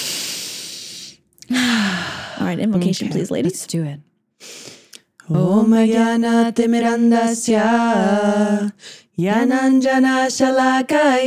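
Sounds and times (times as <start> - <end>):
group of women taking a deep breath together: 0.0 - 2.4, 4.4 - 5.1, 8.8 - 9.1
speech: 2.4 - 4.6, 5.3 - 11.2.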